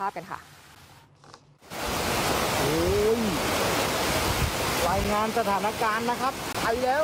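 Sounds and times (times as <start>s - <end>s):
speech: 0.0s - 0.6s, 4.8s - 7.0s
fast-moving floodwater rushing on a street: 1.6s - 7.0s.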